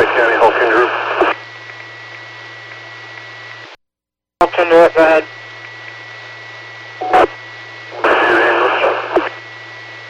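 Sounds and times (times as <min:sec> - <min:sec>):
garbled voice fragments over a radio scanner: 0:00.0 - 0:01.4, 0:04.4 - 0:05.3, 0:07.0 - 0:09.4
radio static over a radio scanner transmission: 0:00.0 - 0:03.7, 0:04.4 - 0:06.2, 0:07.0 - 0:09.6
steady hum: 0:00.0 - 0:03.8, 0:04.4 - 0:10.0.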